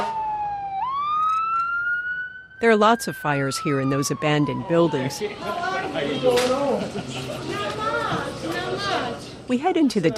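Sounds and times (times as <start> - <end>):
fire engine siren wailing on a main road in Cleveland: 0.0 - 6.6
speech: 2.6 - 7.7, 8.8 - 10.1
laughter: 5.6 - 9.2.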